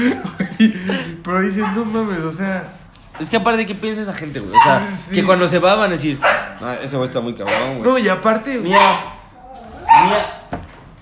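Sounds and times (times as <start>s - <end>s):
speech: 0.0s - 0.3s, 1.3s - 9.1s, 10.0s - 10.6s
laughter: 0.0s - 1.4s
dog barking: 4.5s - 4.9s, 6.2s - 6.6s, 7.4s - 7.9s, 8.6s - 9.2s, 9.8s - 10.5s.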